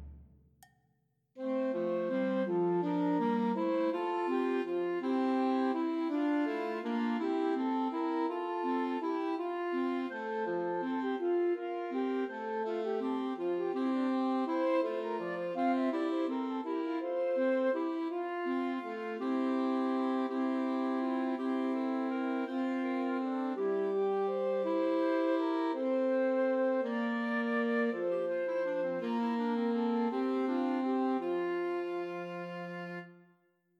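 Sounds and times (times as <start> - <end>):
Christmas carol trio for flute, clarinet and alto saxophone: 1.4 - 33.2.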